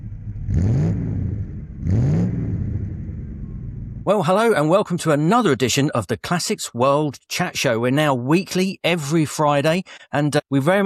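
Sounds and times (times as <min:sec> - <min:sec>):
stock Nissan Elgrand minivan engine revving on a race track: 0:00.0 - 0:04.0
speech: 0:04.1 - 0:10.8.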